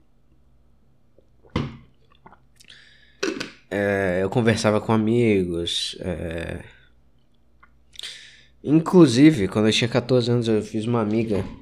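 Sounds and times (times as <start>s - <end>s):
person gulping water: 1.2s - 3.6s
speech: 3.7s - 6.8s, 8.6s - 11.5s.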